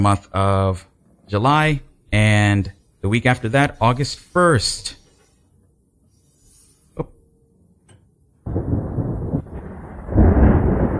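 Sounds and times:
speech: 0:00.0 - 0:05.0, 0:07.0 - 0:07.2
deep rolling rumble of thunder: 0:08.4 - 0:10.9.

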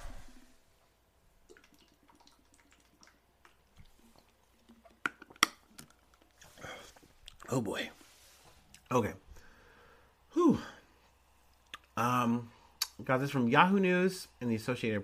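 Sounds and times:
person sipping and swallowing water: 0:01.4 - 0:07.5
speech: 0:07.5 - 0:08.0, 0:08.9 - 0:09.2, 0:12.0 - 0:15.0
breathy exhale: 0:09.3 - 0:10.9.

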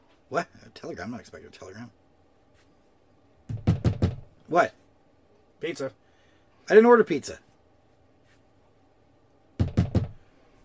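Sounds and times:
speech: 0:00.3 - 0:02.0, 0:04.5 - 0:04.8, 0:05.6 - 0:06.0, 0:06.7 - 0:07.5
firm knocking on a door: 0:03.5 - 0:04.3, 0:09.6 - 0:10.2.

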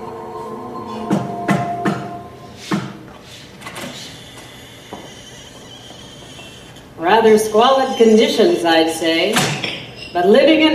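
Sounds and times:
basement door of an empty warehouse creaking open: 0:03.6 - 0:10.2
speech: 0:07.2 - 0:10.7.

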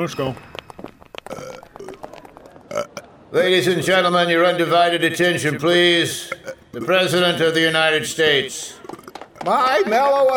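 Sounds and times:
speech: 0:00.0 - 0:00.5, 0:03.3 - 0:08.8, 0:09.4 - 0:10.3
long belch: 0:01.2 - 0:01.9, 0:02.7 - 0:03.1, 0:06.2 - 0:06.9, 0:08.7 - 0:09.5.

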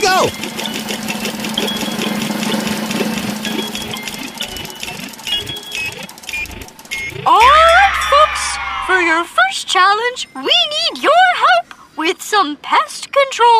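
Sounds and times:
prize wheel spinning and clicking: 0:00.0 - 0:08.3
speech: 0:00.2 - 0:01.7, 0:08.9 - 0:13.5.

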